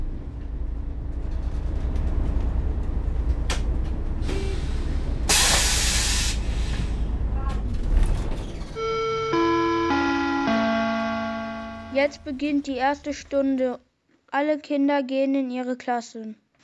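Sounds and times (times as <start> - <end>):
bus arriving at a school, engine rumbling and idling: 0.0 - 13.7
bus air brakes hissing: 4.2 - 7.2
stepped electronic chime: 8.8 - 12.3
speech: 12.0 - 16.4.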